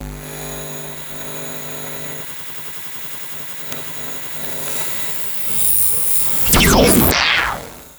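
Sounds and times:
harsh electromagnetic static: 4.7 - 7.9
sci-fi magic energy burst: 5.5 - 7.9.

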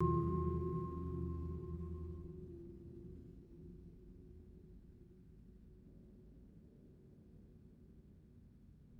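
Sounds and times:
deep muted bell strike: 0.0 - 3.3
sustained hum: 0.0 - 5.4.

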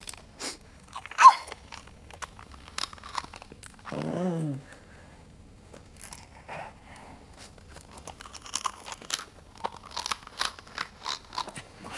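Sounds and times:
wolf chewing bones: 0.9 - 4.1, 7.4 - 11.9
wolf whining: 1.0 - 1.6, 3.9 - 4.8.

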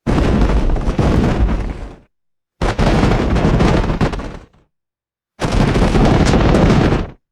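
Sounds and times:
cartoonish animal stampede thumps: 0.0 - 4.7, 5.4 - 7.2.

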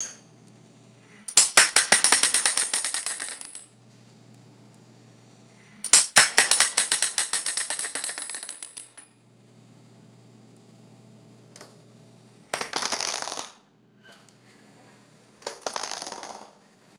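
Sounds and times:
metal bullet cartridges falling and bouncing: 1.2 - 3.7, 5.8 - 9.1, 12.6 - 13.6, 15.4 - 16.6.

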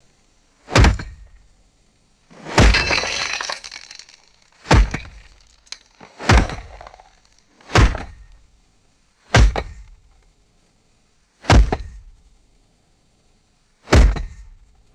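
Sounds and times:
heavy sledgehammer striking a cinder block: 2.4 - 8.2, 9.4 - 9.8, 13.9 - 14.4.

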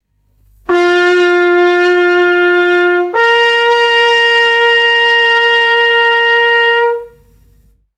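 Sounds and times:
bright brass coach horn call: 0.7 - 7.4.

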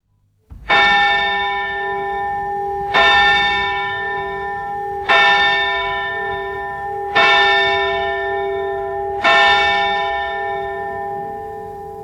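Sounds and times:
large outdoor clock bell striking: 0.7 - 12.0.

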